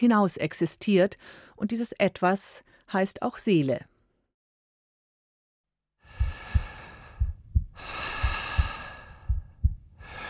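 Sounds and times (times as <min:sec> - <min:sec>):
speech: 0:00.0 - 0:03.9
slow deep breaths: 0:01.2 - 0:01.6, 0:06.0 - 0:10.2
steady low double-thump heartbeat: 0:06.1 - 0:10.2.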